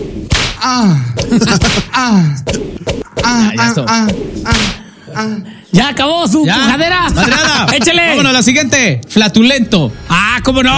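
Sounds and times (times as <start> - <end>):
person imitating whip cracks: 0.3 - 4.8
speech: 0.6 - 10.7
laughter: 1.2 - 2.2, 6.8 - 8.4.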